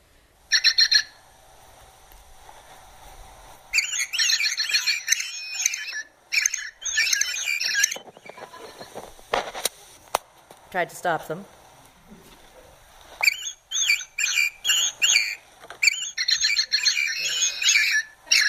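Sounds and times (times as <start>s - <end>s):
birds singing early in the morning: 0.5s - 1.2s, 3.7s - 9.0s, 13.2s - 18.4s
speech: 10.8s - 12.2s.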